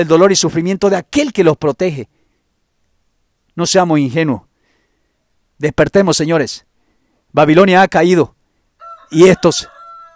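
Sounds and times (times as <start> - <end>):
speech: 0.0 - 2.2, 3.6 - 4.5, 5.6 - 6.7, 7.3 - 8.4, 9.1 - 9.7
rooster crowing: 8.8 - 10.1.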